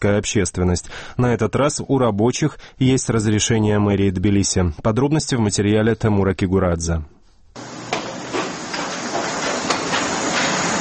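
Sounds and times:
speech: 0.0 - 7.7
construction site sawing and grinding noise: 7.6 - 10.8
hammer knocks at construction site: 7.8 - 10.8.

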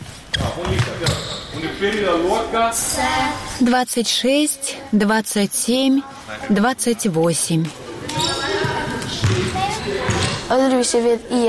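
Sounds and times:
ball bouncing in a steady dribbling rhythm: 0.3 - 1.4, 7.6 - 10.5
speech: 0.6 - 8.4, 10.5 - 11.4.

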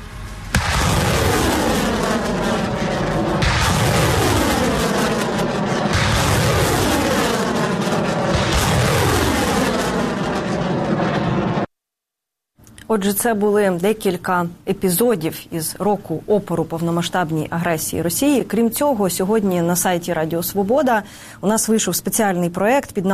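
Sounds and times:
Uragan and Bureviy multiple rocket launchers firing a salvo of rockets: 0.5 - 11.7
speech: 13.0 - 23.1.

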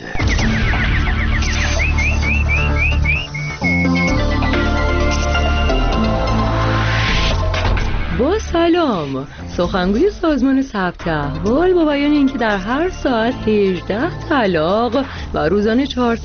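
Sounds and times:
nightingale warbling: 0.0 - 4.9
steady musical backdrop: 0.0 - 16.2
speech: 8.7 - 16.2.

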